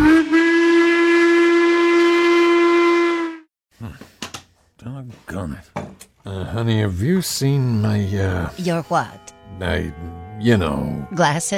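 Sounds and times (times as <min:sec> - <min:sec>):
loud steam train whistle blast: 0:00.0 - 0:03.5
speech: 0:06.6 - 0:11.5.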